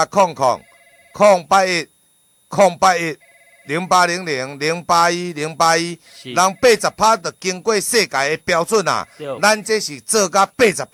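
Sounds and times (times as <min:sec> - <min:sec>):
speech: 0:00.0 - 0:01.9, 0:02.5 - 0:10.9
telephone ringing: 0:00.4 - 0:01.6, 0:02.9 - 0:05.0, 0:06.1 - 0:10.0
person talking loudly: 0:06.2 - 0:06.6, 0:09.1 - 0:09.8.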